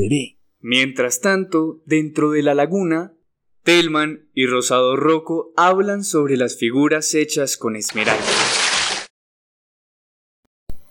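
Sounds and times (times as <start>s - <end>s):
speech: 0.0s - 8.6s
water splashing: 7.9s - 9.1s.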